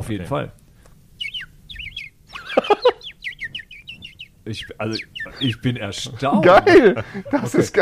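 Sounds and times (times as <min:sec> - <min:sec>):
speech: 0:00.1 - 0:00.6, 0:04.5 - 0:07.8
louder lower squawking flourish: 0:01.0 - 0:06.8
person whistling an imitation of bird chirping: 0:01.2 - 0:05.7
laughter: 0:02.3 - 0:03.1, 0:04.9 - 0:07.8.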